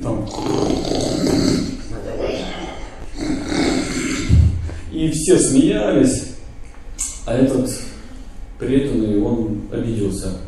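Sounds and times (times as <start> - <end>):
sleeping man snoring: 0.3 - 1.9, 2.7 - 4.5
speech: 5.0 - 6.3, 7.3 - 7.9, 8.6 - 10.4.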